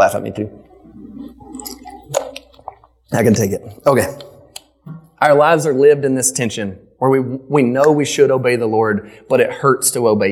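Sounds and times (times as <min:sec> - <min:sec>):
speech: 0:00.1 - 0:02.2, 0:03.1 - 0:04.3, 0:05.2 - 0:10.3
person sipping and swallowing water: 0:00.6 - 0:05.2.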